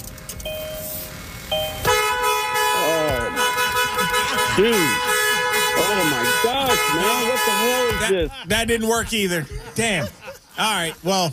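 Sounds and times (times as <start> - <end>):
car horn honking: 0.5 - 9.2
laughter: 2.9 - 11.3
speech: 4.6 - 5.0, 6.8 - 11.3.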